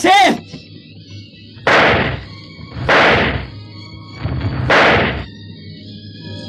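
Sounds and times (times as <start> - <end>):
revolver gunshots: 1.6 - 3.6, 4.2 - 5.3.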